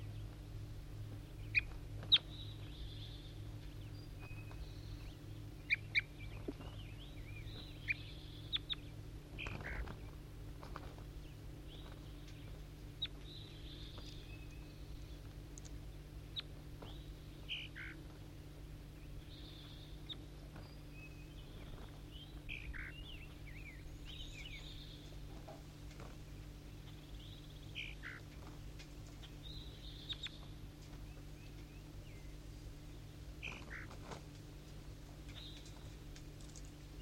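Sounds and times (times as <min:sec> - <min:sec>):
steady low hum: 0:00.0 - 0:37.0
wild bird chirping on a foggy outdoor recording: 0:01.0 - 0:34.3, 0:34.9 - 0:37.0.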